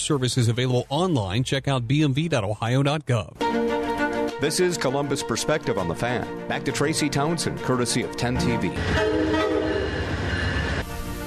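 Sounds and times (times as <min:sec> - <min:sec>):
speech: 0:00.0 - 0:03.8, 0:04.4 - 0:09.4
deep rumble of a passing train: 0:07.4 - 0:11.2
train horn blasting: 0:08.4 - 0:10.8.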